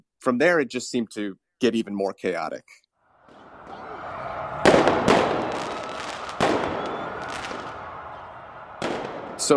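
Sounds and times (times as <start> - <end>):
speech: 0.2 - 2.8
crowd-like din: 3.2 - 9.5
fireworks cracking with rumble: 3.2 - 9.5.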